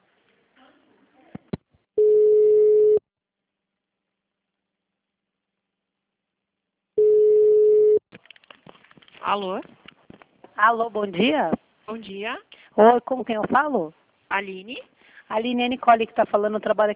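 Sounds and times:
telephone tone beeps after a dropped call: 2.0s - 3.0s, 7.0s - 8.0s
clicks and handling noises: 8.1s - 10.6s
speech: 9.3s - 9.8s, 10.6s - 16.9s.

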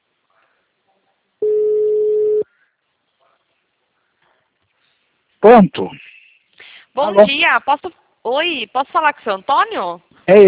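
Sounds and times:
telephone ringing tone as a recorded call is placed: 1.4s - 2.4s
speech: 5.4s - 6.2s, 7.0s - 10.4s.

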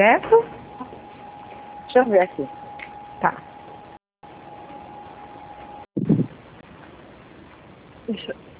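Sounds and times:
speech: 0.0s - 0.6s, 2.0s - 2.6s, 3.2s - 3.5s, 8.1s - 8.5s
household appliances humming: 0.0s - 5.9s
electric fan whirring: 0.0s - 8.5s.

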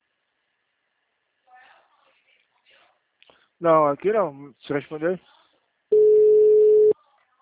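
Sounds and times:
speech: 3.6s - 5.4s
telephone ringback tone of an unanswered call: 5.9s - 7.0s.

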